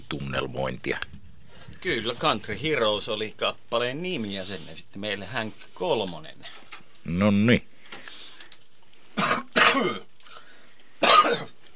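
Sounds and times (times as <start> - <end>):
speech: 0.1 - 1.2, 1.8 - 7.7, 9.2 - 10.1
person coughing: 9.2 - 10.1, 11.0 - 11.6.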